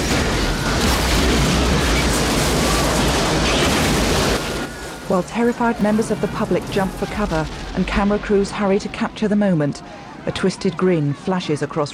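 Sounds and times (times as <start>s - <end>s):
massive explosion blowing a van apart: 0.0s - 9.2s
speech: 5.1s - 11.9s.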